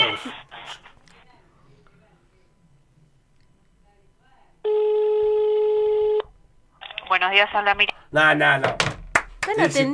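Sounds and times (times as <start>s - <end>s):
faint noise: 0.0s - 9.9s
speech: 0.2s - 0.4s, 7.2s - 8.8s, 9.5s - 9.9s
telephone ringback tone on an outgoing call: 4.7s - 6.2s.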